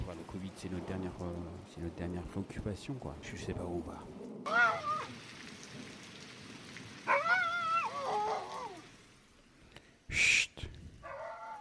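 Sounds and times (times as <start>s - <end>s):
speech: 0.1s - 4.9s
pack of dogs pursuing people howling and yelping: 4.5s - 5.2s, 7.1s - 8.9s, 11.0s - 11.5s.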